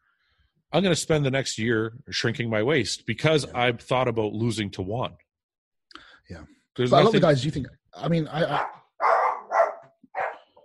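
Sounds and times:
speech: 0:00.7 - 0:05.2, 0:06.3 - 0:08.8
dog barking: 0:08.5 - 0:10.6.

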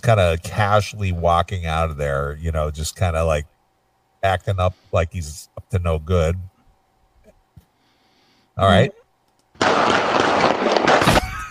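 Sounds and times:
speech: 0:00.0 - 0:03.5, 0:04.2 - 0:06.5, 0:08.6 - 0:09.0
rapid gunfire from a played video: 0:09.6 - 0:11.4.

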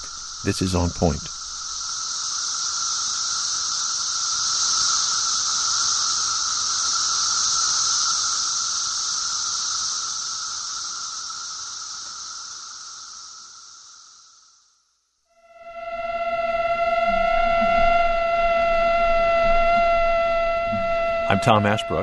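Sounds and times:
male and female mosquitoes beating their wings while mating: 0:00.0 - 0:14.4, 0:15.3 - 0:22.0
cicada buzzing: 0:00.0 - 0:22.0
speech: 0:00.4 - 0:01.4, 0:21.4 - 0:22.0.

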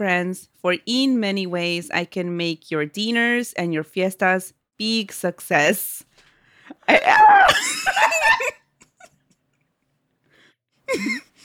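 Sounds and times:
speech: 0:00.0 - 0:08.6, 0:10.9 - 0:11.3
person yelling in frustration: 0:07.0 - 0:07.6.

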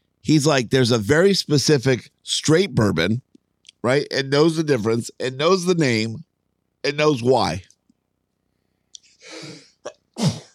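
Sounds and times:
speech: 0:00.3 - 0:07.7
loud sneeze with gasping build-up: 0:09.2 - 0:10.5.

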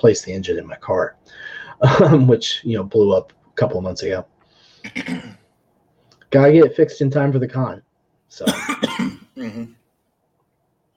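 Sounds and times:
speech: 0:00.0 - 0:05.4, 0:06.3 - 0:09.8
person coughing from a tickle in the throat: 0:04.9 - 0:05.4, 0:08.4 - 0:09.8.

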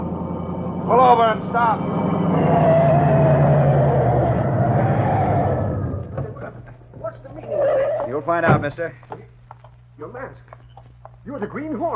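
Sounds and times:
car engine roaring while speeding along on highway: 0:00.0 - 0:06.5
speech: 0:00.9 - 0:02.8, 0:08.2 - 0:09.2, 0:10.0 - 0:10.5, 0:11.2 - 0:11.9.

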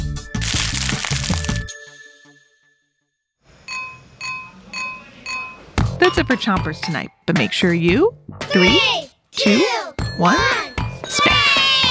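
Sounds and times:
colony of snapping shrimp crackling: 0:00.4 - 0:01.6
chiming musical passage: 0:01.7 - 0:07.0, 0:10.0 - 0:11.9
speech: 0:06.1 - 0:11.4.

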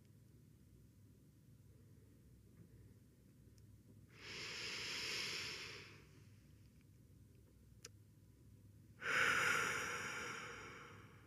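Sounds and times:
slow deep breathing in a guided breathing exercise: 0:04.1 - 0:06.3, 0:09.0 - 0:11.2.

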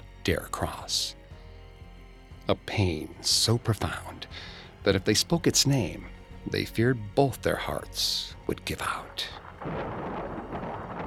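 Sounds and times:
speech: 0:00.2 - 0:01.2, 0:02.5 - 0:10.0
storm rain: 0:09.3 - 0:11.0.

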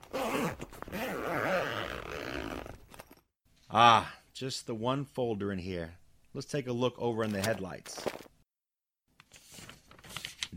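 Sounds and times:
zipper opening on leather briefcase on car passenger seat: 0:00.0 - 0:03.2
speech: 0:03.7 - 0:08.2.

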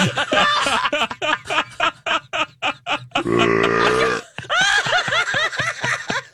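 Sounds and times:
rapid bursts of laughter: 0:00.0 - 0:06.3
long loud deep burp: 0:03.2 - 0:04.3.

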